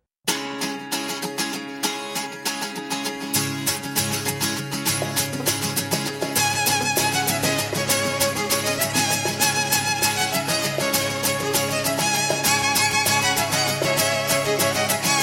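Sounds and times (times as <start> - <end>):
guitar: 0.2 - 15.2
violin: 5.0 - 15.2.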